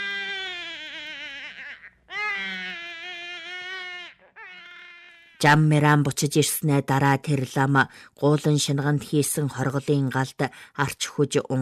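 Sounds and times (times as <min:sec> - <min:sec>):
child crying shrilly near a ger: 0:00.0 - 0:05.4
speech: 0:05.4 - 0:11.6.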